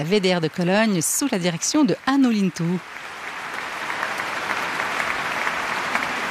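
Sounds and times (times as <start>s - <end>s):
speech: 0.0s - 3.0s
large concert audience applause: 2.1s - 6.2s.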